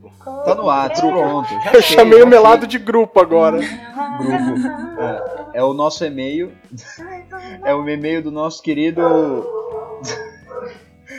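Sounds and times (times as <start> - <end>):
speech: 0.0 - 11.1
dog whining with drawn-out whimper: 0.3 - 2.1, 4.2 - 5.6, 9.0 - 10.8
laughter: 1.1 - 2.6, 3.5 - 5.8, 9.3 - 11.1
dog giving a short sharp bark: 9.0 - 10.8.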